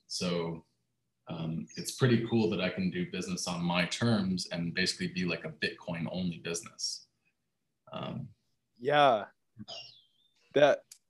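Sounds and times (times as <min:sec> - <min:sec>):
speech: 0:00.1 - 0:00.7, 0:01.3 - 0:07.1, 0:07.9 - 0:10.0, 0:10.6 - 0:10.9
birds chirping outdoors in Panama: 0:09.6 - 0:10.5.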